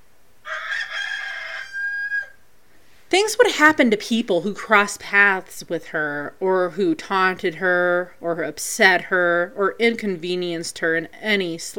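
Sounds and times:
rooster crowing cock-a-doodle-doo: 0.4 - 2.4
speech: 3.1 - 11.7.

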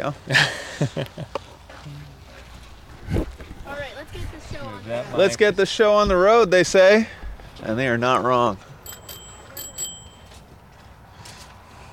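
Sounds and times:
speech: 0.0 - 2.0, 4.1 - 8.7
bicycle bell ringing: 8.8 - 10.8.

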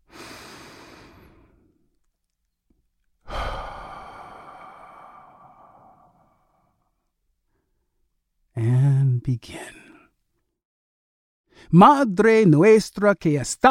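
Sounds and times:
deep breath drawn in and let out: 0.0 - 1.9, 3.2 - 7.9
speech: 9.3 - 9.6, 11.7 - 13.6.

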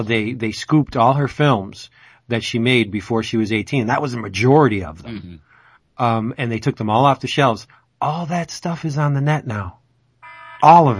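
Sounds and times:
speech: 0.0 - 9.8, 10.6 - 10.9
electronic phone tone: 10.2 - 10.9.

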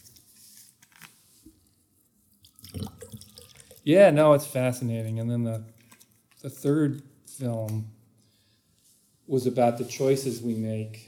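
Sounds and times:
water being poured into a glass: 2.4 - 3.9
speech: 3.9 - 5.7, 6.4 - 8.0, 9.3 - 11.0.

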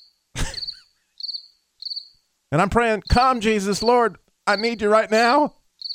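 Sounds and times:
crickets chirping: 0.0 - 2.2, 3.0 - 4.9, 5.8 - 5.9
speech: 2.5 - 5.6.

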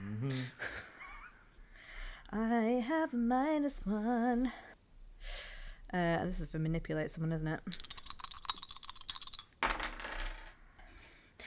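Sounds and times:
laughter: 0.0 - 1.6
speech: 0.2 - 0.7, 3.1 - 4.7, 5.9 - 7.9
dice rolling on a hard table: 7.5 - 10.9.

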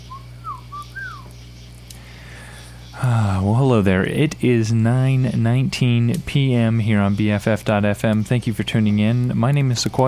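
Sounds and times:
bird whistling in the breeze: 0.0 - 1.4
steady low hum: 0.0 - 10.0
speech: 3.0 - 10.0.

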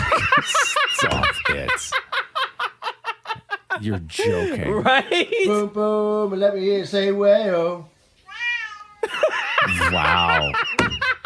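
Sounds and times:
laughter: 0.0 - 5.7, 9.0 - 11.2
speech: 3.8 - 7.9, 9.7 - 10.7
cat meowing along to a song: 8.2 - 9.0.

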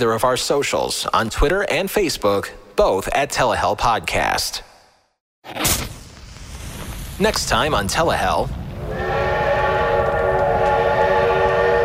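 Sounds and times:
speech: 0.0 - 4.7, 5.4 - 5.9, 7.2 - 8.6
rolling train rumbling: 7.2 - 11.8
train whistle: 8.8 - 11.8.

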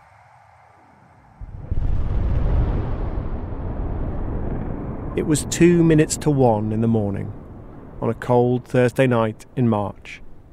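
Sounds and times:
distant explosion boom near the coal mining town of Mezhdorachensk: 1.4 - 8.7
speech: 5.2 - 7.4, 8.0 - 10.2.

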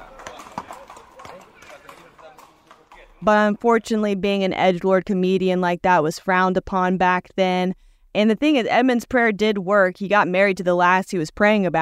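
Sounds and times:
horse hooves clip-clopping: 0.0 - 5.2
speech: 3.2 - 11.7.

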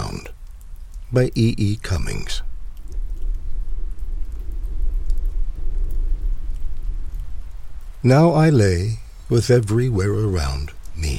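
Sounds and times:
steady dense rain falling: 0.0 - 11.1
speech: 1.1 - 2.5, 8.0 - 11.1.

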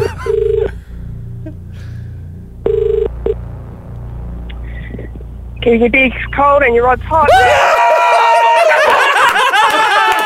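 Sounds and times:
laughter: 0.0 - 0.4, 7.8 - 10.2
low steady hum: 0.0 - 9.3
telephone ringing with electronic warbling bursts: 0.3 - 0.7
speech: 5.7 - 7.8.

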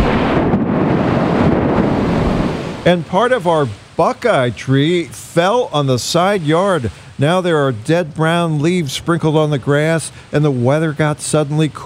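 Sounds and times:
continuous rumbling roar of a big thunderstorm: 0.0 - 4.0
speech: 2.8 - 11.8.

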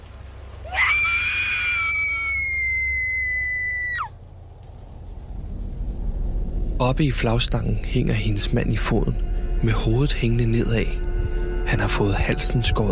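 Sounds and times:
low rumble: 0.0 - 12.9
woman's deafening piercing scream: 0.6 - 4.1
speech: 6.8 - 11.0, 11.7 - 12.9.

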